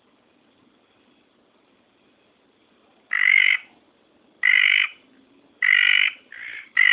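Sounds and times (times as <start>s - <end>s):
red tree frog Litoria rubella buzzy nasal call: 3.1s - 3.8s, 4.4s - 5.0s, 5.6s - 6.9s.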